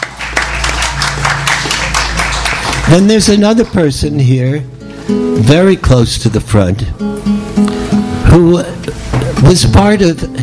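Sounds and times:
audience applauding: 0.0 - 3.9
speech: 2.9 - 7.7, 8.3 - 10.4.

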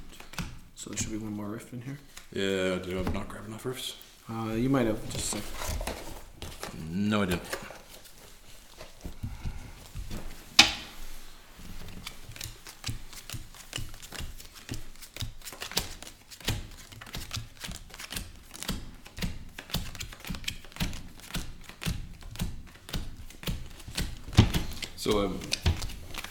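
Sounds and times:
playing cards being split into piles on a table: 0.0 - 1.2, 11.9 - 26.2
speech: 0.8 - 5.8, 6.8 - 7.6.

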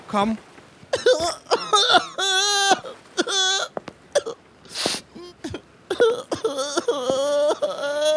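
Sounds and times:
speech: 0.1 - 2.8
person crying and sobbing: 1.0 - 3.7, 4.7 - 8.1.

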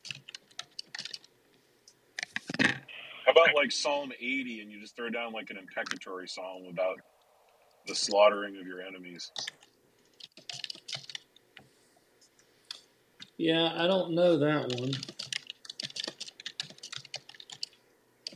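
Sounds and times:
typing on a computer keyboard: 0.0 - 1.3, 9.4 - 11.2, 14.7 - 18.3
speech: 3.4 - 7.1, 7.9 - 9.6, 13.4 - 15.1.

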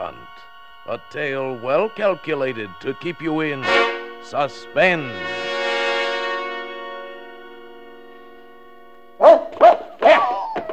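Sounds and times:
sustained musical chord: 0.0 - 10.0
speech: 0.9 - 5.4
dog barking with a slight echo: 9.2 - 10.7.

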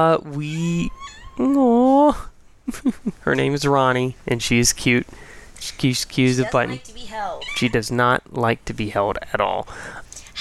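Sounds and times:
speech: 0.0 - 10.4
cat meowing: 0.8 - 1.7, 7.2 - 7.8.

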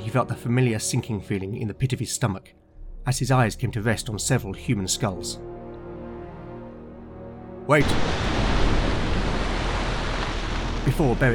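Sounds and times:
speech: 0.1 - 5.6, 7.7 - 8.2, 10.9 - 11.3
roar of churning water as an enormous serpentine creature bursts from the water: 7.8 - 11.3.

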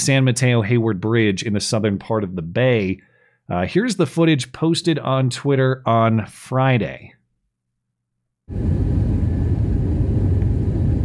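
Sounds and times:
speech: 0.0 - 7.2, 8.5 - 9.0
airplane cabin roar aboard a plane in flight: 8.5 - 11.0.

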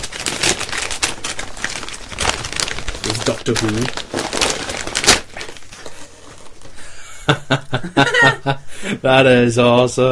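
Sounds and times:
wrapping paper being torn open: 0.0 - 6.8
speech: 3.3 - 4.1, 7.5 - 10.0
laughter: 7.1 - 8.7.

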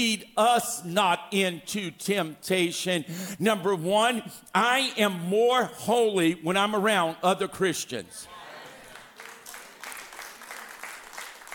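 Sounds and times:
speech: 0.0 - 8.3
room full of people applauding: 8.6 - 11.5.

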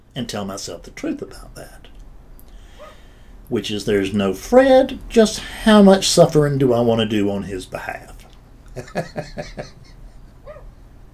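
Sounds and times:
speech: 0.2 - 1.9, 3.5 - 8.2, 8.8 - 9.9
dog yapping outside, muffled: 2.8 - 3.0, 10.4 - 10.8
laughter: 8.8 - 10.4
dog whining: 10.4 - 10.8.

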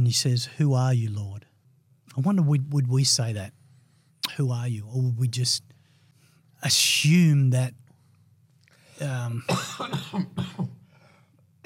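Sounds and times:
speech: 0.0 - 1.5, 2.1 - 3.6, 4.2 - 5.7, 6.6 - 7.8, 9.0 - 10.7
loud coughing fit: 9.4 - 10.8.

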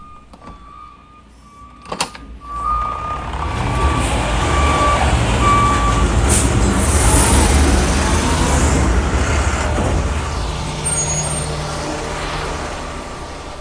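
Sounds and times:
garbage truck reversing beeps: 0.0 - 6.1
garbage truck engine drone in alley: 0.0 - 13.5.

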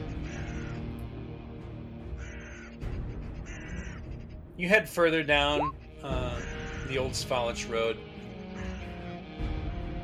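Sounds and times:
raven cawing: 0.0 - 4.5, 6.0 - 7.2, 8.3 - 9.3
speech: 4.6 - 8.1.

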